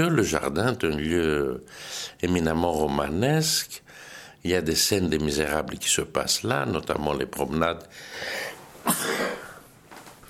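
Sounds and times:
speech: 0.0 - 9.2
breathy inhale: 1.7 - 2.2, 3.9 - 4.4, 7.9 - 8.6
person sneezing: 8.8 - 9.6.

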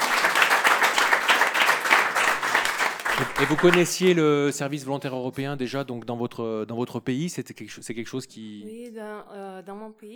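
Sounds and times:
crowd applauding: 0.0 - 4.4
laughter: 2.1 - 4.1
speech: 3.2 - 10.1.

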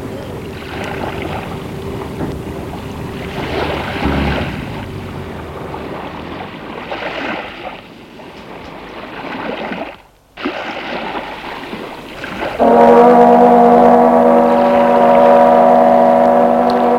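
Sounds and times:
loud sustained ship's horn blast over the water: 0.0 - 7.4, 12.4 - 16.9
sea waves washing around a ship: 0.0 - 16.9
wind over the sea: 0.0 - 16.9.

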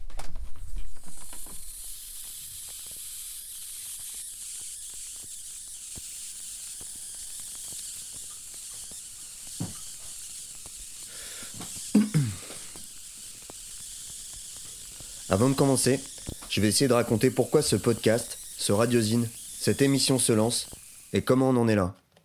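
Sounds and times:
fermenting kefir fizzing and hissing: 1.1 - 21.5
speech: 15.3 - 22.0.

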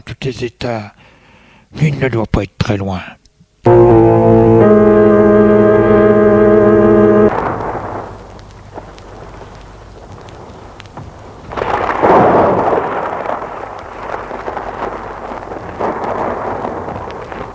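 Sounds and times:
speech: 0.2 - 1.0, 1.7 - 4.9
steady hiss of rain: 3.6 - 17.5
sustained musical chord: 3.7 - 8.1
loud rolling thunderclap: 5.6 - 17.5.

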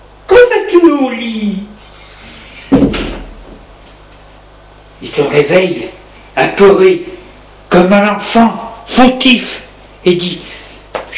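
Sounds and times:
speech: 0.8 - 1.5, 5.0 - 7.1, 7.7 - 10.5
door opening: 1.8 - 3.6.

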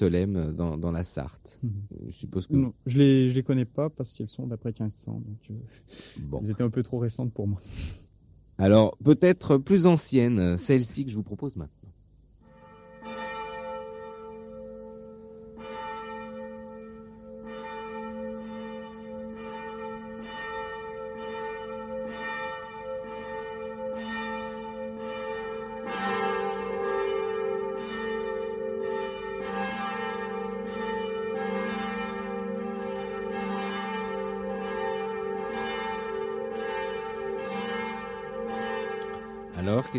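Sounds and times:
speech: 0.0 - 8.0, 8.6 - 11.8
smaller higher church bell ringing: 12.4 - 39.9.

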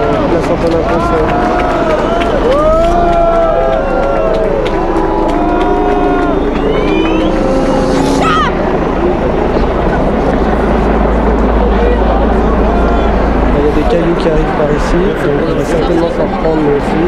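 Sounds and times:
protesters shouting: 0.0 - 8.7
crowd of protesters running at a demonstration in a city square: 0.0 - 17.0
speech: 0.5 - 1.4.

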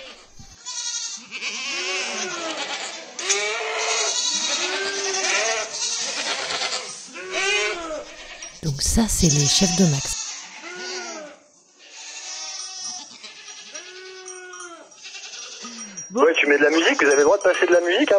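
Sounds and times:
several goats bleating: 0.0 - 8.6, 13.2 - 14.3
speech: 8.6 - 10.2, 16.4 - 18.1.

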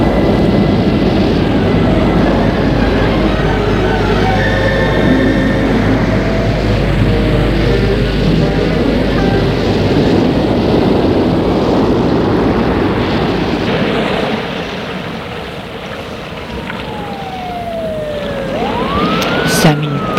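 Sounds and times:
police siren wailing at an accident: 0.0 - 11.8, 15.9 - 20.1
loud steady rumbling wash of noise: 0.0 - 20.1.

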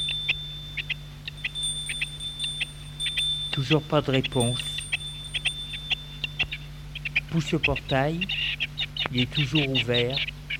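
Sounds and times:
bell at a house gate ringing in electronic chirps: 0.0 - 6.9
low steady hum: 0.0 - 10.5
speech: 3.6 - 4.8, 7.3 - 10.4.

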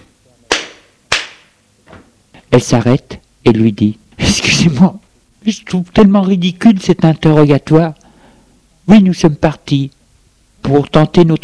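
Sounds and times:
sharp loud slaps across the face: 0.5 - 2.0
speech: 2.5 - 8.0, 8.9 - 10.0, 10.6 - 11.4.

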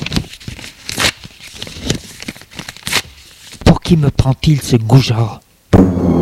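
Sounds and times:
letter paper ripping and crinkling as it is torn up in fury: 0.0 - 3.6
speech: 3.9 - 6.1.

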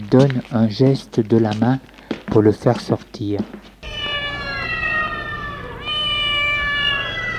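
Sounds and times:
speech: 0.1 - 3.6
black cat meowing: 3.8 - 7.3.

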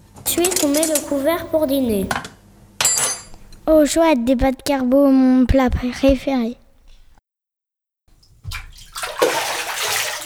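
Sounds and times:
speech: 0.3 - 2.3, 3.7 - 6.6
water gushing from a tap into a bathtub: 8.2 - 10.2.

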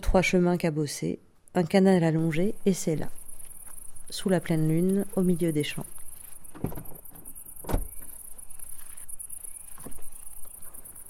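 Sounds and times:
speech: 0.1 - 3.2, 4.1 - 6.0, 6.6 - 6.9
insects chirring in fields at night: 1.4 - 11.0
car doors thudding as people climb out of cars: 6.5 - 8.2.

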